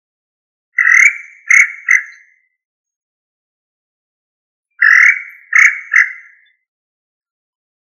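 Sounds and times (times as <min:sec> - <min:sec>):
quail giving harsh buzzy three-note call: 0:00.8 - 0:02.2, 0:04.8 - 0:06.5.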